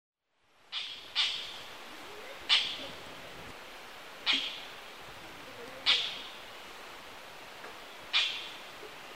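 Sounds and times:
faint steady background hiss: 0:00.2 - 0:09.1
Oriental dollarbird giving harsh rasping calls in Kuroda, Tottori, Japan: 0:00.7 - 0:01.6, 0:02.5 - 0:02.9, 0:04.2 - 0:04.7, 0:05.8 - 0:06.4, 0:08.1 - 0:08.6.

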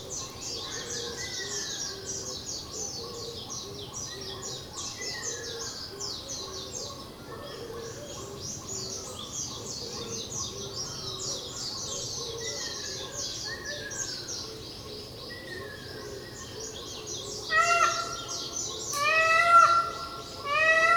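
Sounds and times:
Indian peafowl wailing on Miyakojima: 0:17.5 - 0:18.3, 0:19.0 - 0:20.9.

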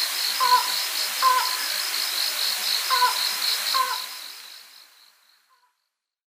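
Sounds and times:
slaty-legged crake giving clipped notes on Ishigaki: 0:00.4 - 0:01.6, 0:02.9 - 0:04.2.

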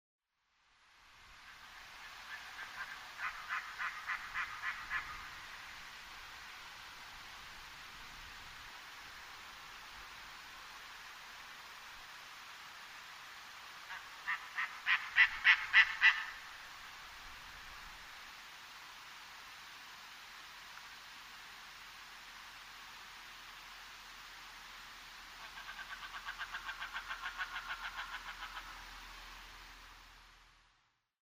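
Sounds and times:
Steller's sea eagle calling: 0:02.0 - 0:05.4, 0:13.9 - 0:16.5, 0:25.4 - 0:28.8.

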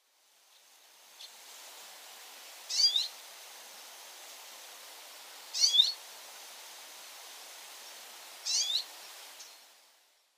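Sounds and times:
common redpoll calling: 0:08.5 - 0:08.9.

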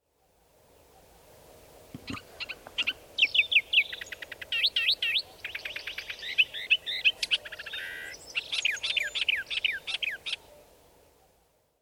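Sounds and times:
Thick-billed Warbler calling: 0:02.0 - 0:10.5.

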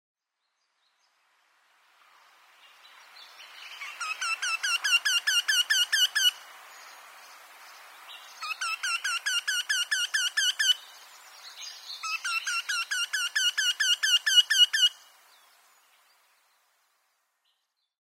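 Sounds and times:
Eurasian Wryneck calling in Monbetsu: 0:03.8 - 0:06.4, 0:08.4 - 0:10.9, 0:12.0 - 0:15.0.

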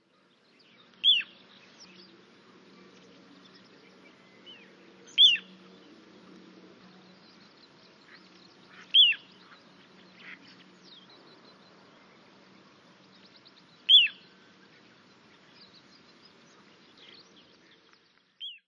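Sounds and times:
little ringed plover calling at Watarase: 0:01.0 - 0:01.5, 0:04.4 - 0:05.7, 0:07.1 - 0:11.8, 0:13.7 - 0:17.2, 0:18.4 - 0:18.6.

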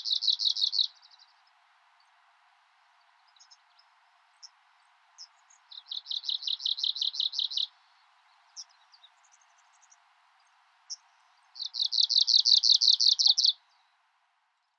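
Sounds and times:
Arctic warbler singing buzzy trills in Magadan, Russia: 0:00.0 - 0:01.5, 0:05.2 - 0:13.8.

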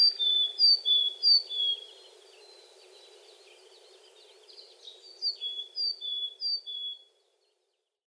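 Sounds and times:
willow tit calling in Shiga Japan: 0:00.0 - 0:01.9, 0:04.8 - 0:07.1.

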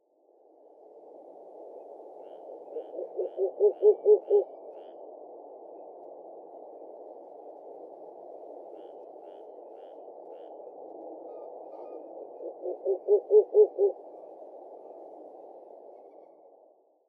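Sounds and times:
Ural owl calling: 0:02.2 - 0:04.9, 0:08.7 - 0:10.5, 0:11.3 - 0:14.0.

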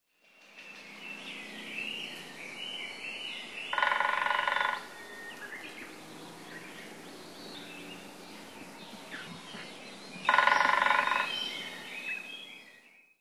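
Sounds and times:
Japanese Green Woodpecker call: 0:02.8 - 0:05.9, 0:09.1 - 0:12.6.

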